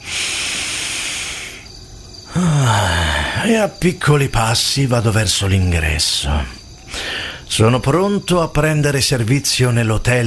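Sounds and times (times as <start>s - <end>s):
long loud airy breath drawn in: 0.0s - 1.7s, 2.3s - 3.4s, 6.9s - 7.5s
voiced sighing sound: 0.0s - 1.7s, 2.3s - 3.5s, 6.9s - 7.4s
speech: 2.4s - 6.6s, 7.5s - 10.2s.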